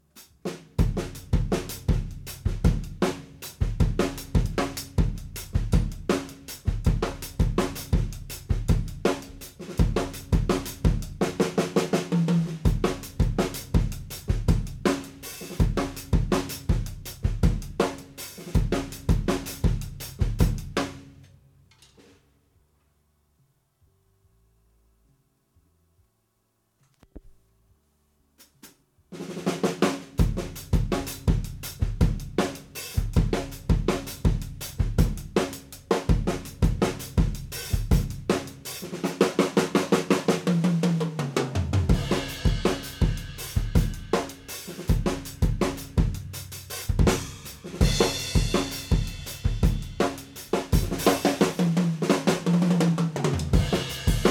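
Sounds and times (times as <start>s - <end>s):
raw drum test: 0.0s - 22.4s, 28.3s - 54.2s.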